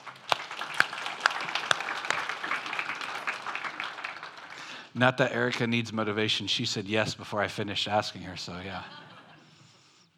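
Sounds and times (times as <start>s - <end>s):
sharp hand claps: 0.0s - 4.8s
crowd applauding: 0.0s - 5.5s
speech: 5.0s - 9.0s
laughter: 8.5s - 9.6s.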